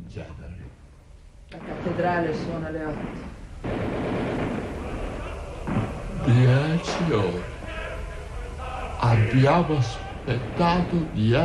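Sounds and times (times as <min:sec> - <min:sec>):
speech: 0:00.2 - 0:00.7, 0:01.5 - 0:04.6, 0:06.2 - 0:07.5, 0:09.0 - 0:11.4
indistinct voices murmuring: 0:01.5 - 0:11.4
gunshots: 0:01.6 - 0:07.6, 0:09.5 - 0:11.4.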